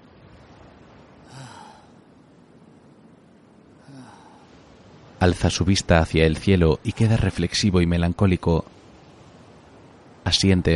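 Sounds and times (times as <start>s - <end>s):
steady low hiss: 0.0s - 10.7s
person lying on a rock gasping for breath after exertion: 1.3s - 2.0s, 3.8s - 4.5s
speech: 5.2s - 8.8s, 10.3s - 10.7s.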